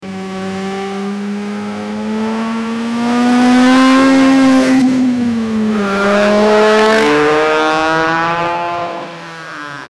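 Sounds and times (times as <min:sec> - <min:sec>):
racing car driving fast: 0:00.0 - 0:09.9.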